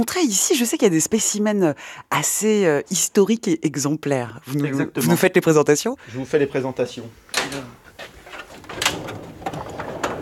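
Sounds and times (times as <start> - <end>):
speech: 0.0 - 7.8
specimen cabinet drawer sliding open with scraping knocks and clunks: 7.3 - 10.1.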